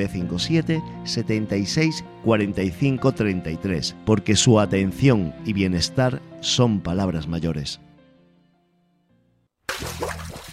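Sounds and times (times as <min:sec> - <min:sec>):
speech: 0:00.0 - 0:07.9
water dripping and splashing: 0:09.7 - 0:10.5.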